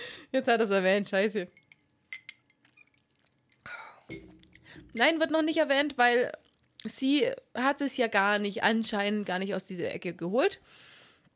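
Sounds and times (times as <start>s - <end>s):
speech: 0.3s - 1.6s, 5.0s - 10.9s
drinking glass clinking: 1.4s - 3.4s, 4.1s - 5.2s.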